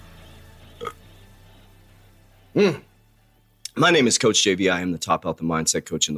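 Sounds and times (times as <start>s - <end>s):
person burping after drinking water: 0.8s - 1.0s, 2.6s - 2.9s
speech: 2.6s - 2.9s, 3.8s - 6.1s.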